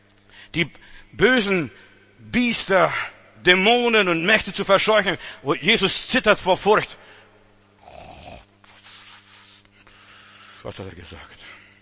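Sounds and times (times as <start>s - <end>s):
speech: 0.4s - 7.1s, 10.6s - 11.6s
snoring: 7.8s - 9.4s
breathy exhale: 7.9s - 10.6s.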